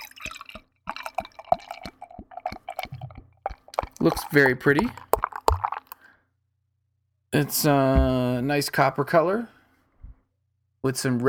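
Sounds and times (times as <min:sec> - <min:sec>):
barley wine beer pouring into a glass: 0:00.0 - 0:06.1
speech: 0:04.0 - 0:05.0, 0:07.4 - 0:09.6, 0:10.8 - 0:11.2.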